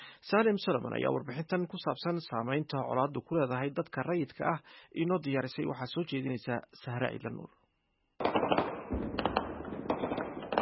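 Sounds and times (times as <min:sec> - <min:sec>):
speech: 0:00.2 - 0:07.6
gunfire across the city of Goma in the Democratic Republic of Congo: 0:08.2 - 0:10.5.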